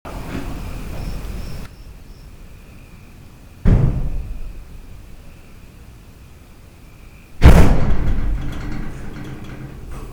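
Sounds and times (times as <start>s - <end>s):
horse barn door slamming: 3.6s - 4.6s, 7.4s - 10.1s.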